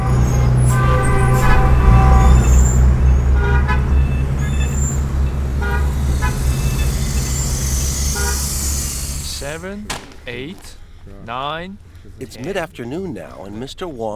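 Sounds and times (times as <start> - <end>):
car horns honking from several vehicles: 0.0 - 10.9
heavy modern street traffic in Beijing: 0.0 - 13.2
speech: 9.7 - 14.1.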